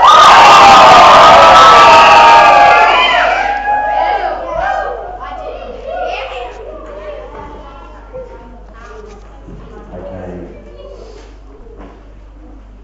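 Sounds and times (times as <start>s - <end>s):
scattered whoops and calls from the audience: 0.0s - 4.9s
audience cheering and shouting: 0.0s - 6.2s.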